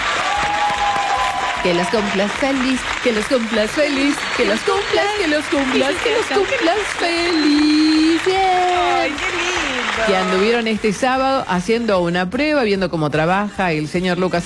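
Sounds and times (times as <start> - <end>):
applause of many hands for a birthday: 0.0 - 11.4
speech: 1.6 - 14.4
people calling out and talking loudly: 1.7 - 14.4.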